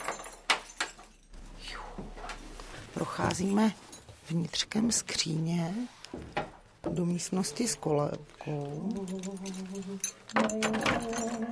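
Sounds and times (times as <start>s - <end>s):
bunch of keys jingling with sharp metallic clinks: 0.0s - 2.0s, 3.0s - 4.8s, 7.0s - 11.5s
speech: 3.0s - 11.5s.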